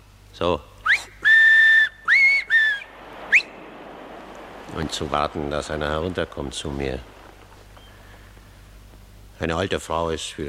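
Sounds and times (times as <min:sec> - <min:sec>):
speech: 0:00.4 - 0:00.7, 0:04.8 - 0:07.1, 0:09.4 - 0:10.4
loud shrill finger whistles: 0:00.8 - 0:03.6.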